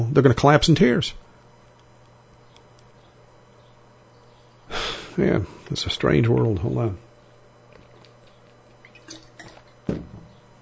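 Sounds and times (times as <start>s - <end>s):
quiet hum: 0.0s - 10.6s
speech: 0.2s - 1.2s, 5.2s - 7.0s
sharp wet gulp: 8.8s - 9.8s
water being poured: 8.8s - 9.8s
water sloshing and dripping: 8.8s - 10.3s.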